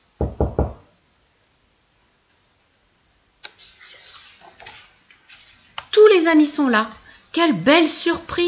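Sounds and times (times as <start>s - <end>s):
knocking on a door: 0.2s - 0.8s
speech: 6.2s - 8.4s.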